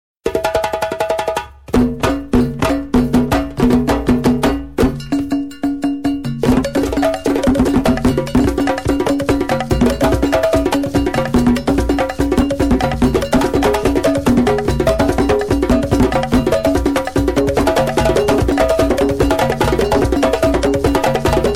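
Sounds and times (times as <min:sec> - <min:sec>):
djembe drumming: 0:00.3 - 0:21.5.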